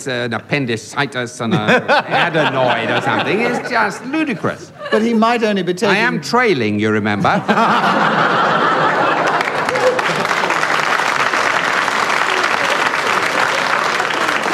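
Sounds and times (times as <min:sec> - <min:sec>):
speech: 0:00.0 - 0:08.7
studio audience chuckling: 0:01.5 - 0:05.2, 0:07.2 - 0:14.5
studio audience applauding: 0:07.8 - 0:14.5.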